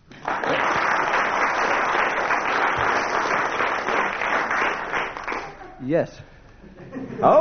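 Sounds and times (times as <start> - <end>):
group applauding with many hands clapping: 0.0 - 5.8
speech: 5.9 - 6.3, 6.9 - 7.4.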